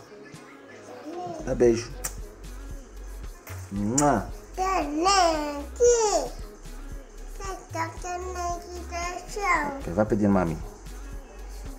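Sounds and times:
young girl babbling in the room: 0:01.0 - 0:01.4, 0:04.6 - 0:06.4, 0:07.4 - 0:09.8
speech: 0:01.5 - 0:02.0, 0:03.7 - 0:06.4, 0:07.7 - 0:10.7.

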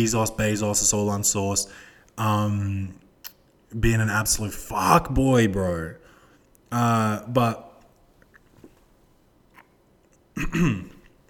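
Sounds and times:
speech: 0:00.0 - 0:03.0, 0:03.7 - 0:06.0, 0:06.7 - 0:07.7, 0:10.4 - 0:11.0
man with a frog in his throat clearing throat: 0:10.4 - 0:11.1.

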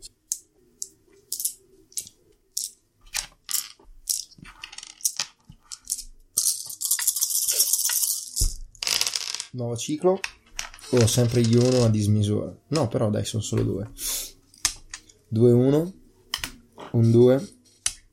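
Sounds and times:
dice being shaken and rolled: 0:00.3 - 0:09.6, 0:10.2 - 0:12.0
speech: 0:09.6 - 0:14.1, 0:15.3 - 0:16.0, 0:16.9 - 0:17.6.

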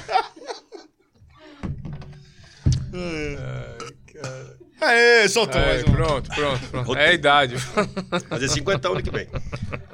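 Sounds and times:
people laughing: 0:00.0 - 0:01.1, 0:05.6 - 0:09.9
person burping after drinking sparkling water: 0:02.8 - 0:04.8
speech: 0:03.0 - 0:03.7, 0:04.8 - 0:09.9.

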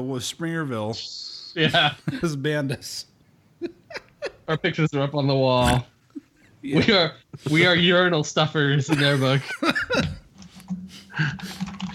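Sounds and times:
speech: 0:00.0 - 0:05.9, 0:06.6 - 0:10.1, 0:11.2 - 0:11.6
laughter: 0:03.6 - 0:04.8, 0:08.8 - 0:10.2
computer keyboard typing: 0:11.4 - 0:11.9.

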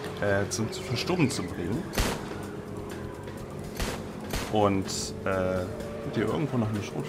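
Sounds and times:
speech: 0:00.2 - 0:02.3, 0:04.5 - 0:07.0
gunfire from several weapons fired from a speeding car window: 0:01.9 - 0:02.3, 0:03.7 - 0:04.6.

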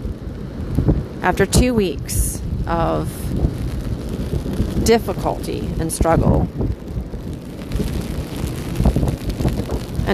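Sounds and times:
ocean waves breaking on a beach: 0:00.0 - 0:10.1
steady dense rain: 0:00.0 - 0:10.1
speech: 0:01.2 - 0:03.5, 0:04.8 - 0:06.7.

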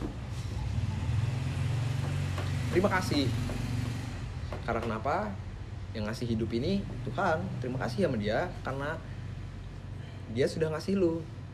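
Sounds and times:
motorcycle engine passing by outside: 0:00.1 - 0:04.4
speech: 0:02.8 - 0:03.5, 0:04.7 - 0:09.1, 0:10.3 - 0:11.4.

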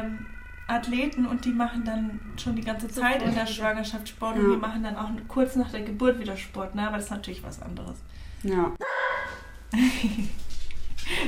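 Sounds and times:
speech: 0:00.1 - 0:08.9, 0:09.7 - 0:10.4
guard dog barking in short repeated yaps: 0:08.8 - 0:09.5.

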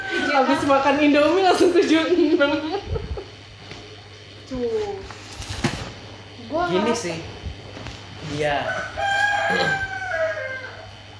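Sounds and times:
rooster crowing: 0:00.0 - 0:01.2, 0:08.4 - 0:11.1
faint steady hum: 0:00.0 - 0:11.1
speech: 0:00.4 - 0:03.0, 0:04.5 - 0:05.2, 0:06.5 - 0:07.4, 0:08.2 - 0:09.8.

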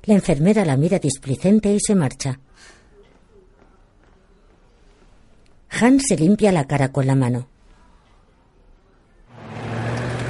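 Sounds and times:
speech: 0:00.0 - 0:02.8, 0:05.8 - 0:07.5
military truck engine rumble driving through city streets: 0:09.3 - 0:10.2.

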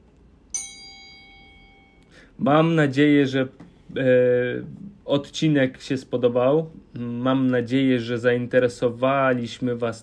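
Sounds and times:
quiet hiss: 0:00.0 - 0:10.0
small bell ding: 0:00.5 - 0:02.1
speech: 0:02.2 - 0:10.0.

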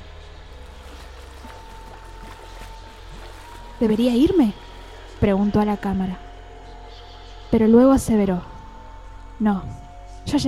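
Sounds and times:
steady rushing water: 0:00.5 - 0:04.4
water sloshing and splashing: 0:00.5 - 0:05.0
speech: 0:03.8 - 0:04.6, 0:05.2 - 0:06.2, 0:07.5 - 0:08.5, 0:09.4 - 0:10.4.

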